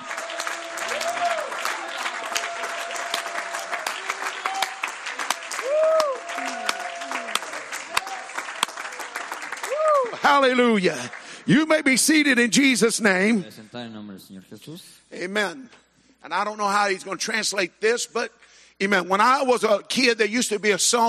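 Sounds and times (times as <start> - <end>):
people in an audience shouting and whooping: 0.0 - 8.4, 9.6 - 10.3
audience clapping: 0.0 - 12.4
speech: 10.3 - 21.0.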